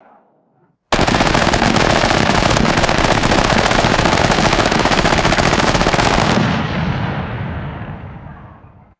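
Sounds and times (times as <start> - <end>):
distant automatic rifle platoon gunfire with echo: 0.9 - 7.8.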